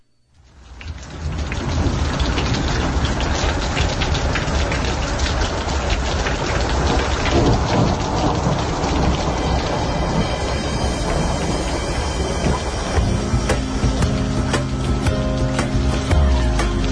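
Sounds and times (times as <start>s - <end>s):
heavy rain hitting surfaces: 0.4s - 16.9s
low thunder rumbling: 0.6s - 16.9s.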